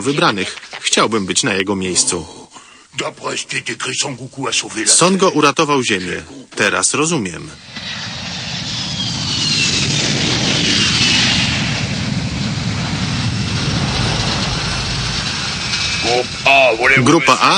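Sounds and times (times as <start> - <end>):
speech: 0.0 - 8.2, 16.1 - 17.5
faint high whine: 3.0 - 17.5
airplane engine roar: 7.6 - 17.5.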